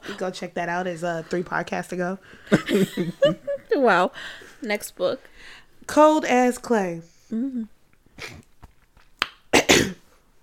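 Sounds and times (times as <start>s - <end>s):
speech: 0.1s - 8.5s
laughter: 2.5s - 3.7s
person clearing throat: 9.6s - 10.0s.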